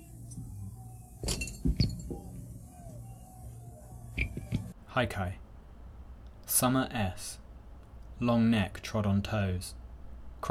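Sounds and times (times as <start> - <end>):
low steady hum: 0.0 - 10.4
thrown glass bottle clinking: 1.2 - 2.3
speech: 5.0 - 5.4, 6.6 - 7.4, 8.2 - 9.8.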